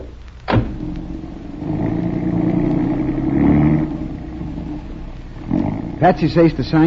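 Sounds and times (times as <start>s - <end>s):
car engine turning over, humming and revving as the car pulls away: 0.0s - 6.8s
sharp thump: 0.4s - 1.2s
speech: 6.0s - 6.8s.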